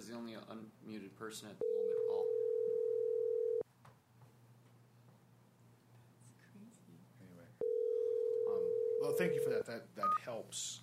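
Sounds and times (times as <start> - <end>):
speech: 0.0 - 2.3, 9.0 - 10.8
steady single-pitched telephone tone: 1.6 - 3.6, 7.6 - 9.3.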